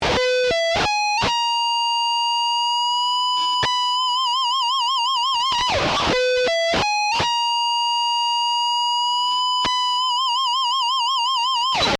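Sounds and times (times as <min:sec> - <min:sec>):
exotic guitar lick: 0:00.0 - 0:11.9.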